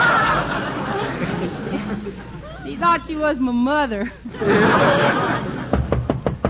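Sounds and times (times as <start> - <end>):
crowd chuckling: 0.0 - 2.6, 4.0 - 6.2
speech: 2.8 - 5.5
sharp knocks on a door: 5.7 - 6.4.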